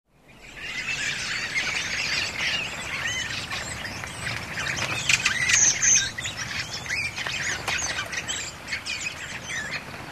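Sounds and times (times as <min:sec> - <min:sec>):
redwing flock twittering with high squeaky chirping notes: 0:00.2 - 0:10.0.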